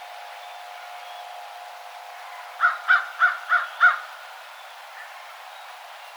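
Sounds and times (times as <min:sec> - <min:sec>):
American crow cawing: 0:02.6 - 0:04.0.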